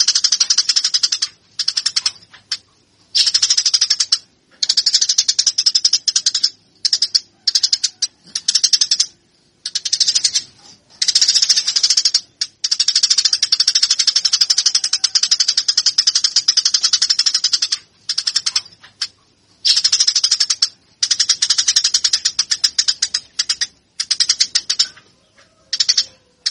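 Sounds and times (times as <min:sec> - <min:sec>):
Eurasian tree sparrow song of rapid chattering chirps: 0:00.0 - 0:26.4.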